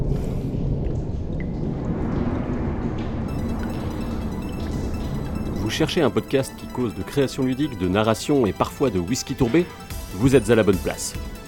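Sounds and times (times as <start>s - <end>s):
thunderstorm rumbling outside: 0.0s - 7.5s
speech: 5.8s - 11.4s.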